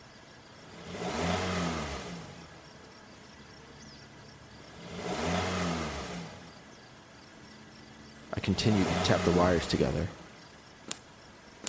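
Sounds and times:
car engine revving: 0:00.6 - 0:02.7, 0:04.2 - 0:10.4
speech: 0:08.4 - 0:10.2.

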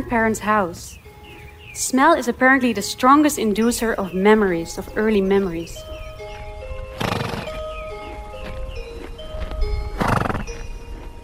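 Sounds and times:
speech: 0:00.1 - 0:01.0, 0:01.8 - 0:05.9
hooves clip-clopping: 0:04.4 - 0:11.2
horse neighing and snorting: 0:06.9 - 0:07.6, 0:10.0 - 0:10.6.

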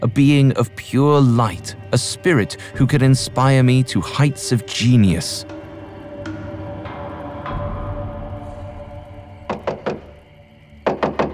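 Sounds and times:
speech: 0:00.0 - 0:05.6
hard knocks pounding on a door: 0:09.5 - 0:10.1, 0:10.9 - 0:11.3.

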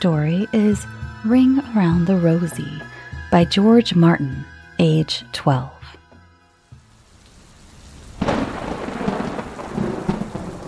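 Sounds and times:
speech: 0:00.0 - 0:06.0
steady loud rainfall: 0:06.6 - 0:10.6
sharp crack of rolling thunder: 0:08.1 - 0:10.6.

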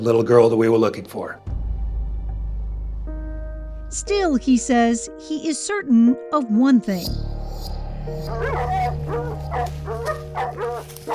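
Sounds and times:
speech: 0:00.0 - 0:01.5, 0:03.9 - 0:07.3, 0:08.0 - 0:11.1
cadaver dogs barking, yipping and whimpering: 0:08.2 - 0:11.1.

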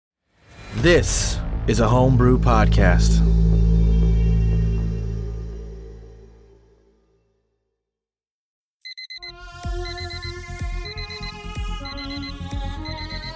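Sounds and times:
low tone: 0:00.7 - 0:07.2
speech: 0:00.8 - 0:03.4
bright electronic alarm ringing pattern: 0:08.8 - 0:13.3.

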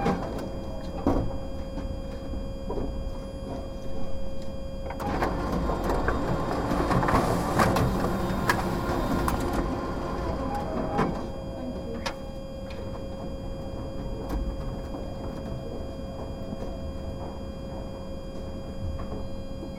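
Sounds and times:
photocopier steady mid-pitched whine and low mechanical hum: 0:00.0 - 0:19.7
loud whirring rush of a photocopier running a copy: 0:05.0 - 0:18.7.

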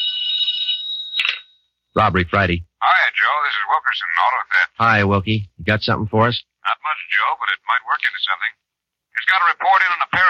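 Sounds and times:
telephone bell in an office ringing: 0:00.0 - 0:01.9
speech: 0:02.0 - 0:08.6, 0:09.2 - 0:10.2.

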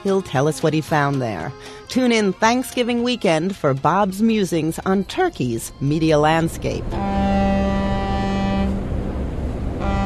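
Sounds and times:
speech: 0:00.0 - 0:07.3
ferry engine droning while crossing the Bosphorus: 0:00.0 - 0:10.0.

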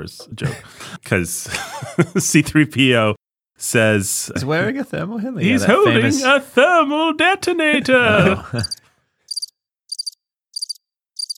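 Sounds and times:
speech: 0:00.0 - 0:08.8
laughter: 0:00.2 - 0:02.8, 0:04.1 - 0:08.8
crickets chirping: 0:08.1 - 0:11.3.

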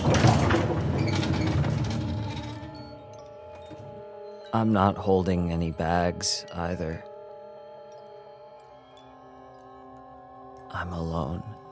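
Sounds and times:
elevator door sliding along its track: 0:00.0 - 0:04.1
speech: 0:04.5 - 0:07.1, 0:10.8 - 0:11.6.

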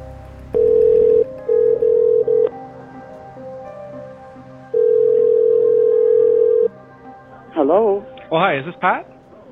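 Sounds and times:
electronic ringback tone of an outgoing phone call: 0:00.6 - 0:02.6, 0:04.7 - 0:06.7
speech: 0:07.8 - 0:09.1.

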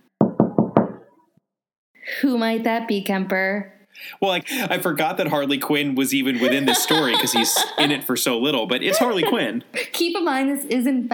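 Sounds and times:
knocking on a wooden door: 0:00.2 - 0:01.0
speech: 0:02.2 - 0:11.1
laughter: 0:04.2 - 0:05.1, 0:06.2 - 0:09.9.

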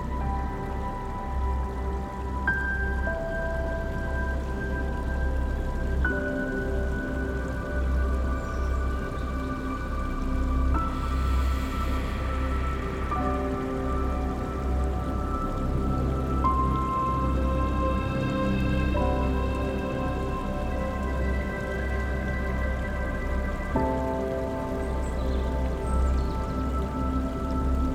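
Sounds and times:
mountain stream water running over rocks: 0:00.0 - 0:27.9
soft sustained musical tones: 0:00.0 - 0:27.9.

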